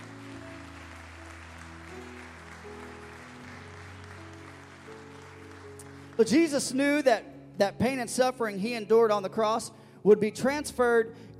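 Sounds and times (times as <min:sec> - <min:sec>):
crowd clapping in praise: 0:00.0 - 0:06.8
low organ or keyboard chords: 0:00.0 - 0:08.5
speech: 0:06.2 - 0:11.3.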